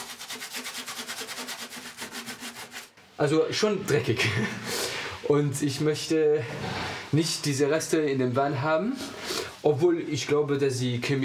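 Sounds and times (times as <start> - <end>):
brush scrubbing a dirty van: 0.0 - 2.9
speech: 3.2 - 11.2.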